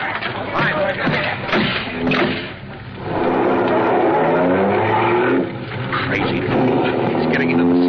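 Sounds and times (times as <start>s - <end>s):
road noise: 0.0s - 7.8s
car engine roaring and revving during a car chase: 1.8s - 7.8s
harsh tire screech: 3.0s - 7.8s.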